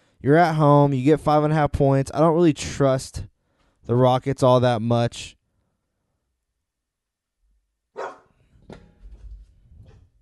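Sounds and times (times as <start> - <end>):
speech: 0.2 - 3.3, 3.9 - 5.4
dog barking sharply: 7.9 - 8.3.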